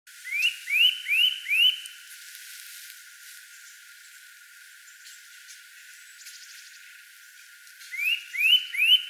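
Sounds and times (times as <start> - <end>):
Eurasian nuthatch Sitta europaea giving rising whistled notes: 0.2 - 1.8, 7.9 - 9.0.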